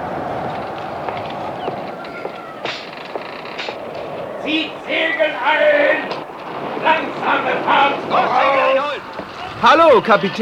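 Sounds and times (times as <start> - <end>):
sea noise: 0.0 - 10.4
strong wind over open water at sea: 0.0 - 10.4
speech: 4.5 - 6.2, 6.8 - 9.0, 9.6 - 10.4.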